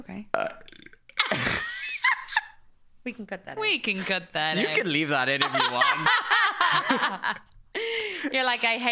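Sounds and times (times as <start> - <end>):
loud drawn-out burp: 0.3 - 1.6
speech: 3.1 - 7.5, 8.3 - 8.9
laughter: 4.6 - 8.3.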